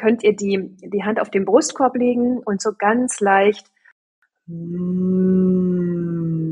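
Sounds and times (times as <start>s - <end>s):
speech: 0.0s - 3.7s, 4.5s - 6.5s
warm voice humming a low tone while warming up: 4.5s - 6.5s.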